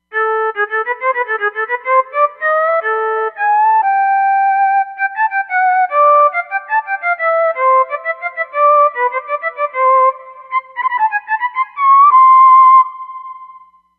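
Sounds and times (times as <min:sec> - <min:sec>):
violin lead melody: 0:00.0 - 0:13.6.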